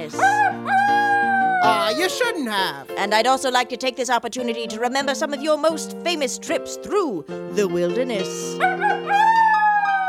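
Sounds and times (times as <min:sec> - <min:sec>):
pet wolf howling: 0:00.2 - 0:02.2, 0:08.6 - 0:10.0
speech: 0:01.9 - 0:10.0.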